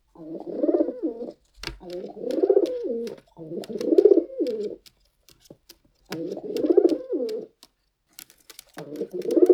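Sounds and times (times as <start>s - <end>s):
pigeon cooing while walking: 0.1s - 4.8s, 6.1s - 7.6s, 8.8s - 9.5s
faint clicks and taps: 1.4s - 9.5s.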